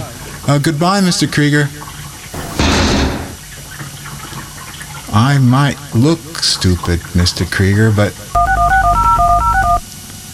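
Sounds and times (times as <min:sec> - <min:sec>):
speech: 0:00.5 - 0:01.8, 0:05.2 - 0:08.4
touch-tone beeps of a telephone number being dialed: 0:08.4 - 0:09.8.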